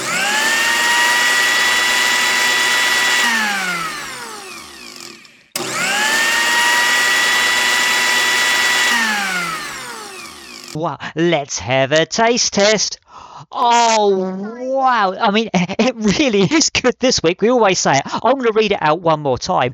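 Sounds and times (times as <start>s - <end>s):
blender blending fruit and juice into a kiwi fruit smoothie: 0.0s - 10.8s
speech: 10.8s - 19.7s.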